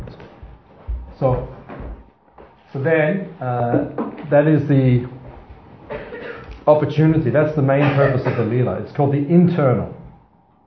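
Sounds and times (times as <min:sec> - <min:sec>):
chair being shifted into place: 0:00.0 - 0:02.6, 0:03.7 - 0:04.4, 0:05.2 - 0:06.7
speech: 0:01.2 - 0:01.6, 0:02.7 - 0:05.2, 0:06.7 - 0:10.0.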